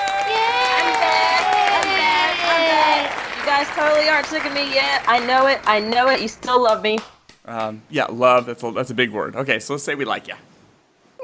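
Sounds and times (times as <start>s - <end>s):
crowd cheering and whooping: 0.0s - 6.8s
scattered clapping: 0.0s - 8.4s
speech: 3.5s - 10.5s.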